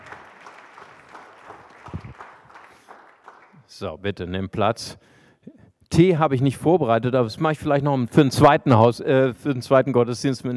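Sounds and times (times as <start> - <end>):
audience at a church service clapping: 0.0 - 3.7
speech: 3.8 - 5.2, 6.0 - 10.5.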